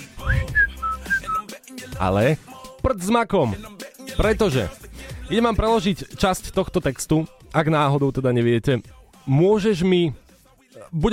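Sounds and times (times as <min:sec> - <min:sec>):
person whistling a pop-style melody: 0:00.0 - 0:01.5
speech: 0:02.0 - 0:10.2, 0:10.8 - 0:11.1.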